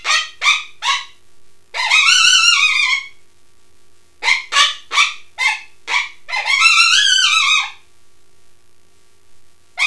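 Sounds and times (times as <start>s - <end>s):
coyote yipping and howling: 0.0s - 3.2s, 4.2s - 7.9s.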